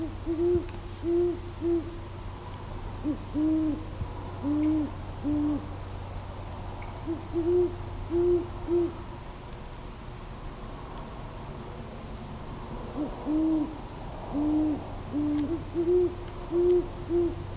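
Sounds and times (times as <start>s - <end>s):
Great Horned Owl Bubo virginianus: 0.0s - 2.0s, 3.0s - 5.7s, 7.0s - 9.0s, 12.9s - 17.4s.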